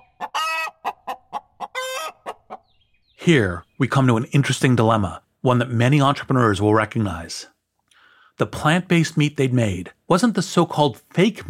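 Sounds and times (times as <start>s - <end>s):
chicken clucking: 0.0s - 2.8s
speech: 3.2s - 7.5s, 8.4s - 11.4s.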